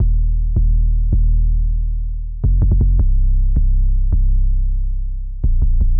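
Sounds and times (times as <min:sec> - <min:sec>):
hyperpop beat with equalized 808 bass: 0:00.0 - 0:05.9.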